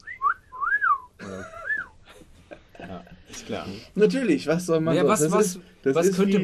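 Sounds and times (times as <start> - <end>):
wolf whistle, the so-called playboy whistle: 0.0 - 2.0
speech: 3.5 - 6.4.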